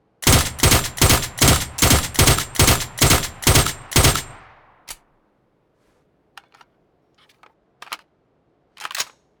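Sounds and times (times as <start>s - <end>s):
suppressed rifle burst fire: 0.2s - 5.0s.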